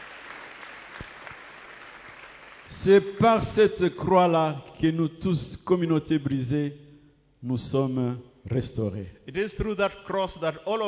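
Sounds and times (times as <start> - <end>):
church congregation clapping in worship: 0.0 - 3.6
speech: 2.7 - 6.8, 7.4 - 10.8.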